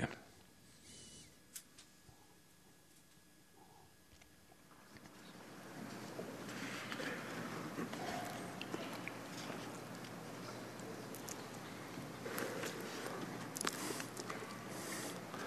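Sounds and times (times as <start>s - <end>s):
murmur of room noise: 0.0s - 15.4s
soft footsteps of several people walking to take their seats on a stand: 4.7s - 14.7s.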